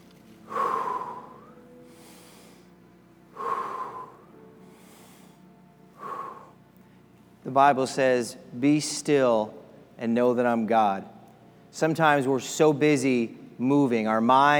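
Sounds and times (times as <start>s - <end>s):
deep breaths drawn in and released: 0.4s - 7.2s
speech: 7.5s - 14.5s.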